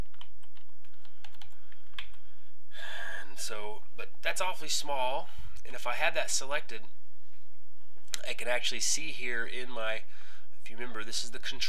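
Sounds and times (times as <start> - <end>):
typing on a computer keyboard into a text box: 0.0 - 2.2
speech: 3.4 - 7.0, 8.2 - 11.6.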